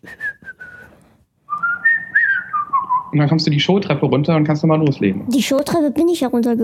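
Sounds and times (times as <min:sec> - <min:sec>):
speech: 0:00.0 - 0:00.2, 0:03.1 - 0:06.6
person whistling a short wavering tune: 0:00.0 - 0:03.2.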